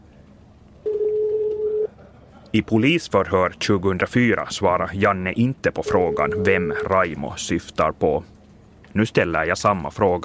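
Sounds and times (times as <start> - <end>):
telephone ringing tone while placing a call: 0.8 - 1.9, 5.8 - 6.9
speech: 2.5 - 8.4, 9.0 - 10.2.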